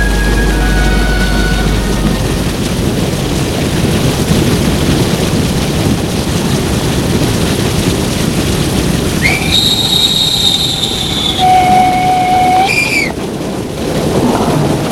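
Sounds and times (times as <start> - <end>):
train rumbling as it pulls into a station: 0.0 - 14.9
high steady metallic squeal of train wheels or brakes: 9.3 - 13.1.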